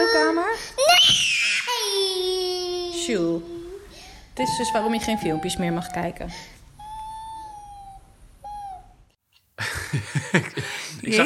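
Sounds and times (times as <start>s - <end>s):
child's loud high-pitched scream: 0.8s - 2.6s, 4.4s - 6.1s, 6.8s - 8.9s
speech: 3.1s - 3.5s, 4.4s - 6.6s, 11.1s - 11.2s
laughter: 9.6s - 11.2s.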